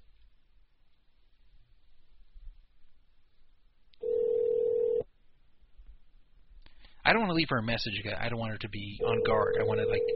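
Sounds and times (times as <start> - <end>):
faint phone line hiss: 0.0 - 9.1
phone line ringback tone: 4.0 - 5.0, 9.0 - 10.1
speech: 7.1 - 10.1.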